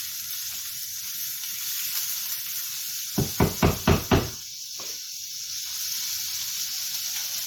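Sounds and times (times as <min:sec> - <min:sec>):
cut-up pork frying in margarine in a pan for fried rice: 0:00.0 - 0:07.4
knocks: 0:03.2 - 0:04.4.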